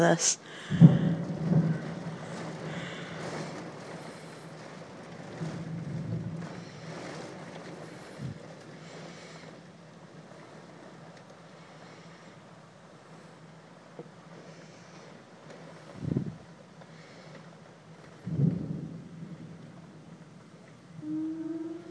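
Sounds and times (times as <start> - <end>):
speech: 0.0 - 1.1
wind noise: 0.6 - 8.8, 15.9 - 16.6, 18.2 - 19.6
rolling thunder: 0.6 - 11.1, 16.0 - 16.6, 18.1 - 21.9.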